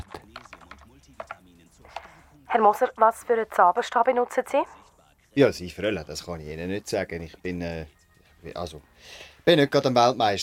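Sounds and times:
woman typing on a computer keyboard heard over the phone: 0.0 - 2.2
speech: 2.5 - 10.4.

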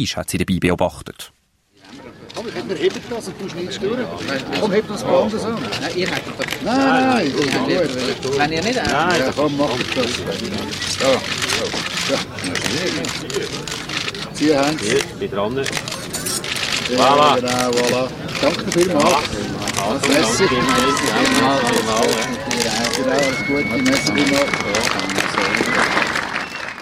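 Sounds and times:
speech: 0.0 - 1.4, 2.5 - 15.8, 16.9 - 25.9
scattered voices and crowd murmur: 1.9 - 26.5
camera shutters clicking at a ribbon cutting ceremony: 6.0 - 26.2.

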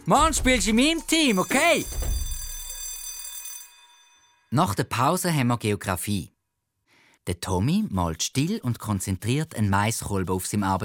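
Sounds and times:
speech: 0.0 - 2.2, 4.5 - 6.3, 7.2 - 10.8
school bell ringing: 0.0 - 4.5.

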